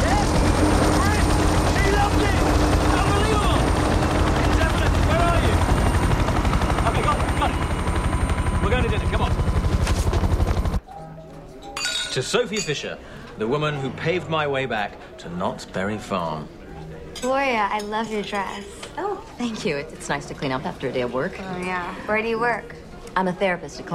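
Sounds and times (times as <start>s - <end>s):
helicopter lifting off: 0.0s - 10.8s
speech: 12.2s - 16.6s, 17.2s - 23.9s.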